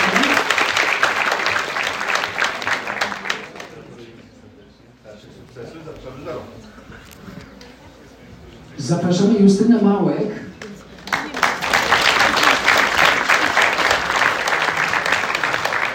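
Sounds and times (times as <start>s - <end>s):
audience applause at an award ceremony: 0.0s - 4.1s, 11.0s - 15.9s
speech: 8.9s - 10.4s.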